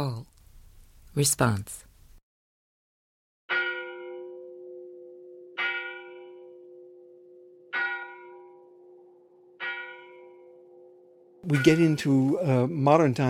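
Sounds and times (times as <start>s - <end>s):
speech: 1.2s - 1.8s, 11.5s - 13.2s
church bell tolling: 3.5s - 12.8s.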